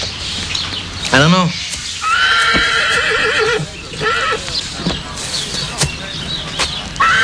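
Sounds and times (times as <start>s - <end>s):
horse hooves clip-clopping: 0.0s - 7.2s
speech: 1.1s - 1.6s
horse neighing: 2.0s - 4.5s, 7.0s - 7.2s.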